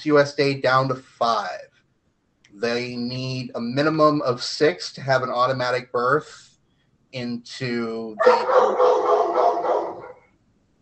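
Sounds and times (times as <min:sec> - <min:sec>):
speech: 0:00.0 - 0:01.7, 0:02.5 - 0:06.5, 0:07.1 - 0:08.8
dog barking and yelping: 0:08.2 - 0:10.2.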